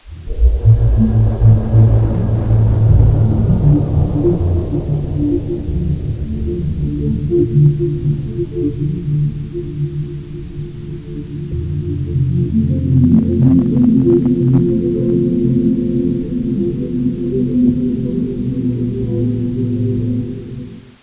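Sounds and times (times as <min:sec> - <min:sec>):
wat temple ambient atmosphere: 0:00.0 - 0:21.0.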